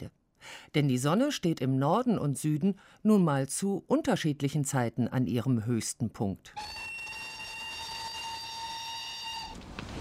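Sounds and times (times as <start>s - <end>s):
speech: 0.0s - 6.9s
train whistle at a railway station: 6.6s - 9.6s.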